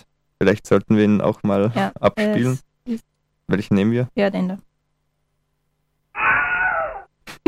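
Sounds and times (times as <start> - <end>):
speech: 0.4 - 4.7
man screaming in pain after being shot by an arrow: 6.2 - 7.1.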